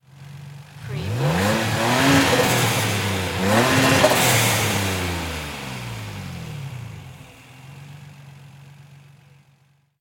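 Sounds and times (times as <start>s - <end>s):
Nissan 350Z engine revving: 0.7s - 7.6s.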